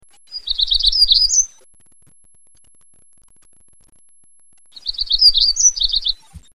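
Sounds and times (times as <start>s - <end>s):
Black-throated gray warbler singing buzzy phrase: 0.4s - 1.5s, 4.8s - 6.2s.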